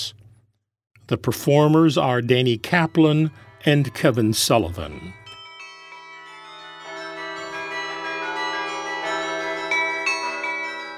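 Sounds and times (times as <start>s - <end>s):
speech: 1.1s - 5.2s
bells ringing: 2.6s - 10.9s.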